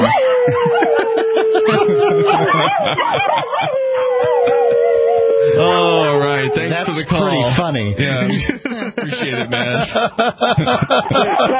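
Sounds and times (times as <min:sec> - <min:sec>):
chuckles: 0:00.0 - 0:03.8, 0:08.2 - 0:11.5
man howling: 0:00.0 - 0:07.4
speech: 0:02.7 - 0:04.3, 0:05.6 - 0:11.5.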